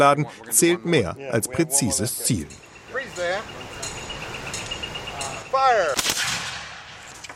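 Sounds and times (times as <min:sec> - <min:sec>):
speech: 0:00.0 - 0:03.7, 0:05.6 - 0:06.1
musket shot during battle-reenactment weapons training: 0:06.0 - 0:07.2.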